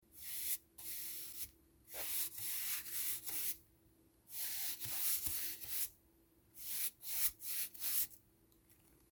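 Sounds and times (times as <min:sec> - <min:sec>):
medium painter's brush on a board: 0:00.1 - 0:03.6, 0:04.3 - 0:06.0, 0:06.6 - 0:08.2.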